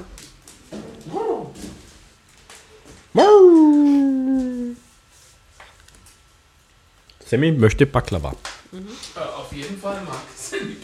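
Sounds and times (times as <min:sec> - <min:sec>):
speech: 0:03.1 - 0:03.8, 0:07.3 - 0:10.8
dog whimpering and whining: 0:03.2 - 0:04.8.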